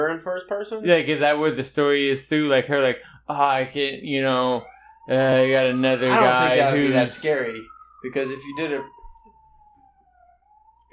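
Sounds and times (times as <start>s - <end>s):
speech: 0.1s - 9.0s
ambulance siren wailing outside: 3.6s - 10.9s.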